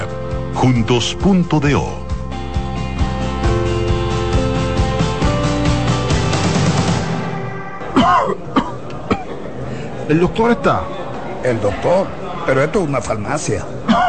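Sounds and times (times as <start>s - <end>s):
upbeat music in a cough syrup advert: 0.0s - 8.2s
speech: 0.6s - 2.0s, 10.1s - 14.0s
harsh coughs in a cough syrup advert: 7.9s - 9.4s, 13.8s - 14.0s.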